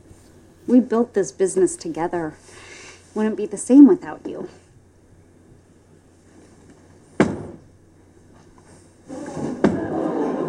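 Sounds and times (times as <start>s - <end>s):
speech: 0.7s - 4.6s
door shutting with a sharp thud: 7.2s - 7.6s
laughter: 9.1s - 10.4s.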